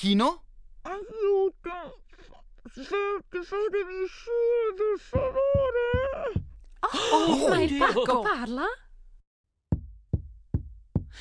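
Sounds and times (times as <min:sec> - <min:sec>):
speech: 0:00.0 - 0:08.8
firm knocks on a door: 0:05.2 - 0:06.6, 0:09.7 - 0:11.2
laughter: 0:06.8 - 0:08.7.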